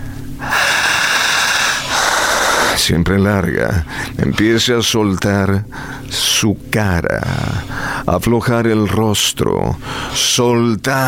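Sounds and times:
intense heavy panting breaths: 0.0 - 3.0, 3.8 - 4.6, 5.6 - 6.1, 7.4 - 8.1, 9.8 - 10.2
speech: 2.9 - 11.0.

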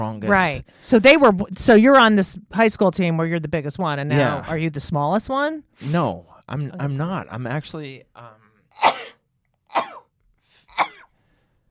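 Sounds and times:
speech: 0.1 - 9.0
person sneezing: 8.7 - 10.0, 10.6 - 11.1.

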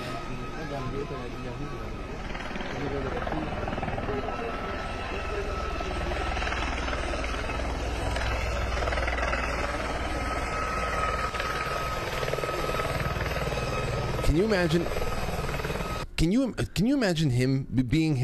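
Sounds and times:
indistinct voices murmuring: 0.0 - 13.9
helicopter flying in to land at a funeral: 0.0 - 16.2
speech: 0.7 - 6.2, 14.3 - 15.0, 16.2 - 18.2.

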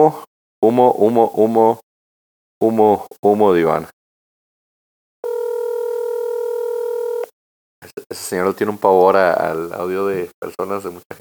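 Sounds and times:
speech: 0.0 - 1.8, 2.6 - 4.0, 7.9 - 11.2
telephone ringback tone on an outgoing call: 5.2 - 7.3.

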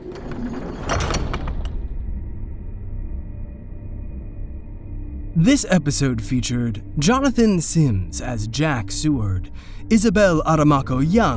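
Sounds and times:
heavy metal furnace door scraping and grinding shut: 0.0 - 1.9
speech: 5.4 - 11.3.

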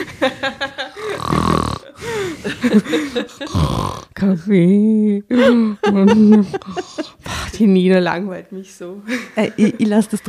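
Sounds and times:
laughter: 0.0 - 3.7, 5.3 - 7.3, 9.1 - 10.2
speech: 0.2 - 0.5, 2.8 - 3.3, 4.2 - 10.2
person imitating snoring with rough throaty grunts: 1.0 - 2.2, 3.4 - 4.2.

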